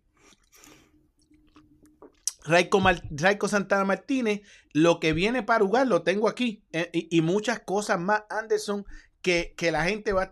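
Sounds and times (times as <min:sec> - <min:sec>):
person sipping and swallowing water: 0:00.2 - 0:02.4
sharp mouth click: 0:01.8 - 0:02.5
speech: 0:02.4 - 0:10.3.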